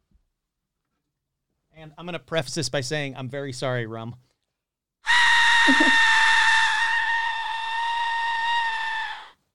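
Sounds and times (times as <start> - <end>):
speech: 1.8 - 4.3, 5.6 - 6.0
Aztec death whistle shriek: 5.0 - 9.4
laughter: 5.7 - 6.0.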